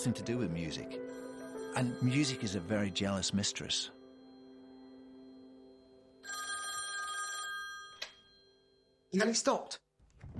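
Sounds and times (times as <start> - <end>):
speech: 0.0 - 4.0, 9.1 - 10.3
telephone bell ringing with bright rapid metallic trilling: 1.1 - 3.8, 5.1 - 9.0.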